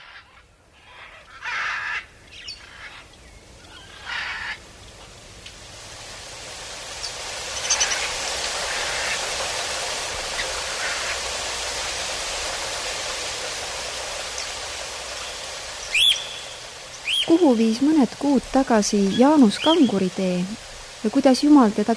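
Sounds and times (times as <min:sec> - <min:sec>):
harsh bird caws: 0:00.0 - 0:03.1, 0:03.7 - 0:04.6
rainforest birds calling in short bursts: 0:00.0 - 0:05.5, 0:06.8 - 0:21.9
steady hiss of insects and foliage in a rainforest: 0:00.0 - 0:21.9
speech: 0:17.3 - 0:21.9.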